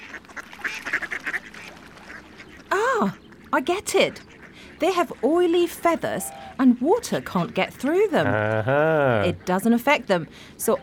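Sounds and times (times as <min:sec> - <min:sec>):
ducks on the water quacking: 0:00.0 - 0:10.8
speech: 0:03.0 - 0:10.8
laughter: 0:08.1 - 0:09.5.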